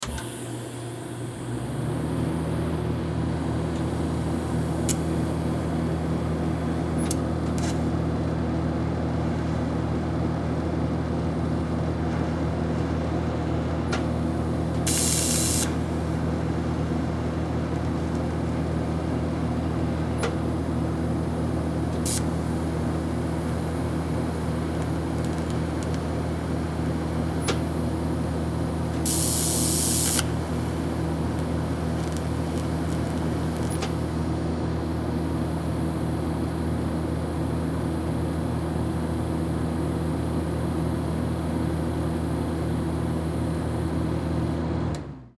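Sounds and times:
arc welder switching on and off: 0.0s - 7.9s, 13.8s - 16.6s, 20.2s - 45.3s
generator powering an arc welder: 0.0s - 45.3s
arc welder sparks: 14.8s - 15.9s, 22.0s - 22.4s, 24.8s - 26.1s, 29.0s - 34.0s.

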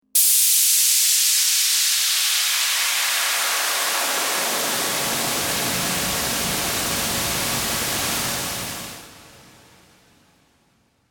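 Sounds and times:
high pressure steam release: 0.2s - 8.9s.

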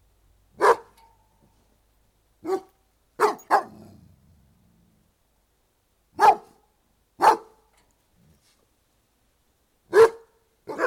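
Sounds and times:
Doberman barking outdoors: 0.6s - 0.9s, 2.4s - 3.9s, 6.2s - 6.6s, 7.2s - 7.6s, 9.9s - 10.8s.

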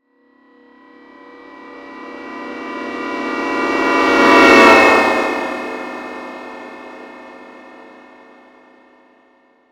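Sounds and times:
small science fiction spaceship passing by: 0.8s - 8.1s.

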